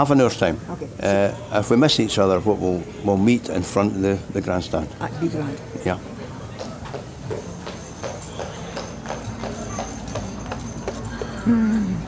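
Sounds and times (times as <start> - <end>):
speech: 0.0 - 6.1, 11.4 - 11.7
heavy Clydesdale horse hooves clip-clopping: 6.6 - 11.5.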